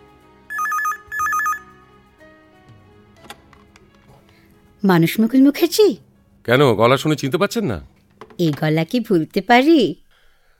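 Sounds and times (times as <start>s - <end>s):
telephone ringing with bright warbling electronic trill: 0.5s - 1.9s
speech: 4.8s - 10.0s.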